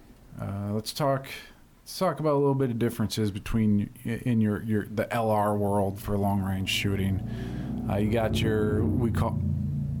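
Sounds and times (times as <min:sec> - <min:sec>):
speech: 0:00.8 - 0:09.5
low steady engine rumble outside: 0:05.6 - 0:09.9.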